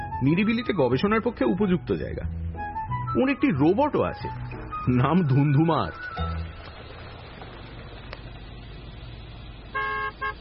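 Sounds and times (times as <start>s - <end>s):
speech: 0.2s - 2.4s, 3.1s - 6.3s
low vehicle rumble: 4.3s - 10.3s
car horn honking: 9.7s - 10.3s.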